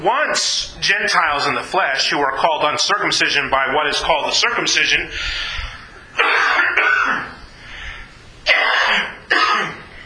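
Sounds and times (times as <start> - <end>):
speech: 0.0 - 5.6
harsh coughing from a person with an allergy: 6.2 - 7.4, 8.4 - 10.0
throat clearing from a person with an allergy: 6.2 - 7.4, 8.5 - 9.9.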